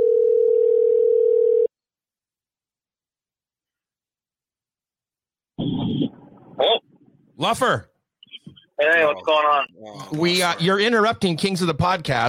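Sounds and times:
loud steady phone dial tone: 0:00.0 - 0:01.7
speech: 0:07.4 - 0:07.9, 0:08.5 - 0:12.2.

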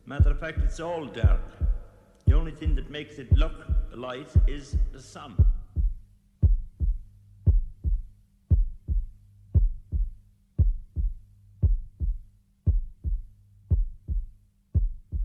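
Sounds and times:
heartbeat thumping in deep double beats: 0:00.0 - 0:15.2
speech: 0:00.1 - 0:01.7, 0:02.3 - 0:05.5.

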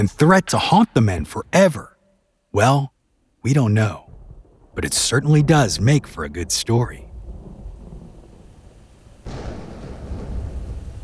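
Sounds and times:
speech: 0:00.0 - 0:01.9, 0:02.5 - 0:04.0, 0:04.8 - 0:07.0
rolling thunder in a thunderstorm: 0:04.0 - 0:11.0.

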